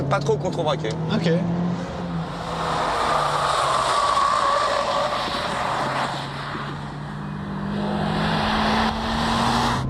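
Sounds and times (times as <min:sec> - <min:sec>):
front-wheel-drive hot hatchback engine at high revs on a race track: 0:00.0 - 0:09.8
wind and road noise: 0:00.0 - 0:09.8
speech: 0:00.1 - 0:01.6.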